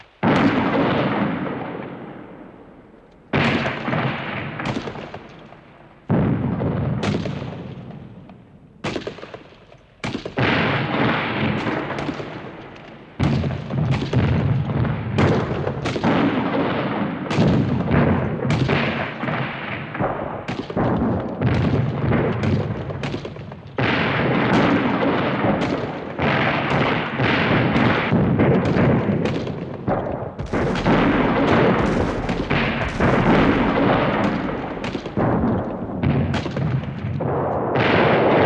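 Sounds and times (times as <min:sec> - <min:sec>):
artillery blasts in an electronic sound composition: 0:00.0 - 0:38.4
heavy booming gunfire in an electronic sound composition: 0:00.0 - 0:38.4.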